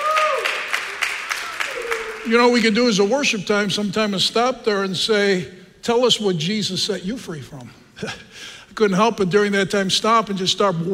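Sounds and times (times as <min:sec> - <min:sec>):
congregation clapping in a steady rhythm: 0:00.0 - 0:02.8
speech: 0:02.2 - 0:10.9.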